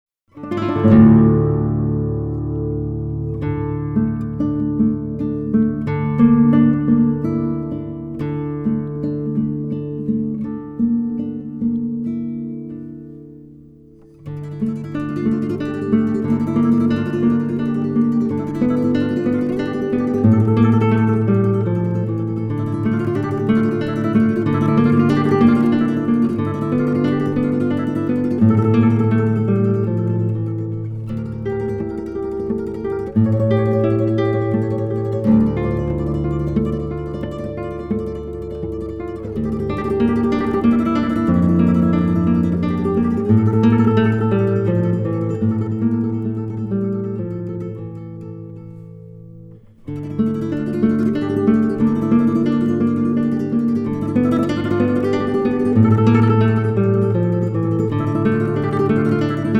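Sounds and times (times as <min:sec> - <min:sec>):
classical guitar: 0:00.2 - 0:59.5.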